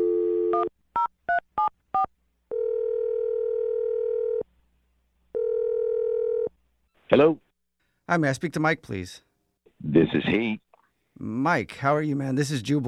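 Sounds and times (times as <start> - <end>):
steady telephone dial tone: 0.0 - 0.7, 2.5 - 4.4, 5.4 - 6.5
long repeating telephone ring tones: 2.5 - 4.4, 5.4 - 6.5
speech: 7.1 - 7.4, 8.1 - 12.8.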